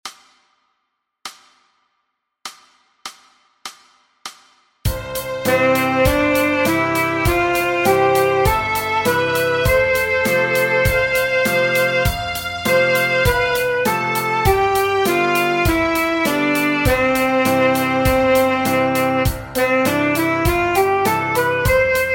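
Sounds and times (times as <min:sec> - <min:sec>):
saxophone playing an A scale: 0:04.9 - 0:22.1.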